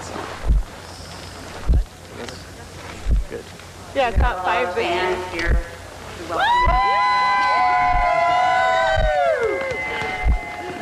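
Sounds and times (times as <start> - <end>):
speech: 4.0 - 5.7, 6.3 - 6.8
crowd cheering for a musher at a sled dog race finish: 6.3 - 10.8.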